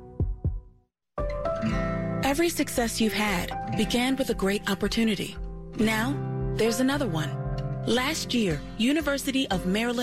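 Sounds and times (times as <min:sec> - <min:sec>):
heartbeat sound effect thumping: 0:00.0 - 0:00.8
speech: 0:02.3 - 0:10.0.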